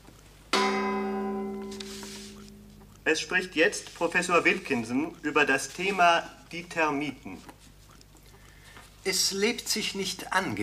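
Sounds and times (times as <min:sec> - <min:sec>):
radio time signal gong stroke: 0:00.5 - 0:02.8
speech: 0:03.1 - 0:07.7, 0:09.0 - 0:10.6.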